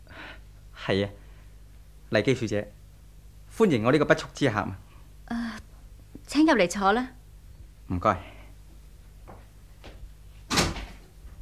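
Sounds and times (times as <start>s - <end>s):
speech: 0.8s - 1.2s, 2.1s - 2.8s, 3.5s - 5.4s, 6.3s - 7.2s, 7.9s - 8.3s
loud broadband door clunk and rattle: 10.5s - 11.1s.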